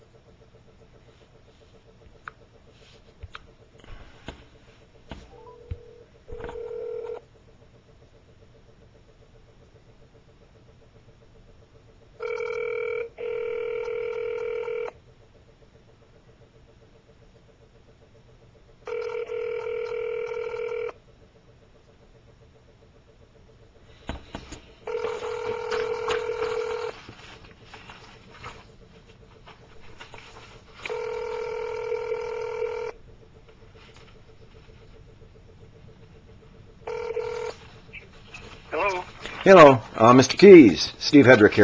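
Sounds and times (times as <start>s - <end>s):
quiet phone line hiss: 5.3s - 7.2s, 12.2s - 15.0s, 18.9s - 21.0s, 24.8s - 27.0s, 30.8s - 33.0s, 36.8s - 38.1s
telephone ringback tone: 5.3s - 7.2s, 12.2s - 15.0s, 18.9s - 21.0s, 24.8s - 26.9s, 30.8s - 33.0s, 36.9s - 37.6s
speech: 39.5s - 41.6s.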